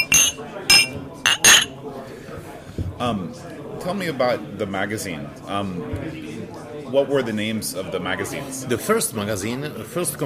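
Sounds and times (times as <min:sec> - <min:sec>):
glasses clinking together in a toast: 0:00.0 - 0:01.7
speech: 0:03.0 - 0:10.2.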